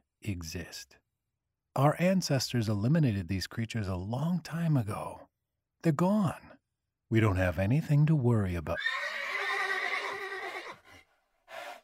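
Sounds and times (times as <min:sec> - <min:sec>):
speech: 0:00.2 - 0:01.0, 0:01.8 - 0:06.5, 0:07.1 - 0:09.2
startled horse whinnying on an open plain: 0:08.8 - 0:11.8.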